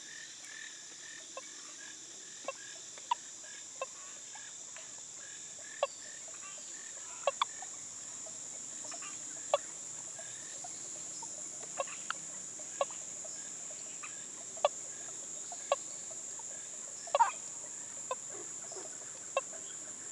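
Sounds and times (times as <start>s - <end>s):
frogs and tree frogs calling in a night chorus in Costa Rica: 1.3s - 20.1s
high shrill of insects or peepers: 5.8s - 20.1s.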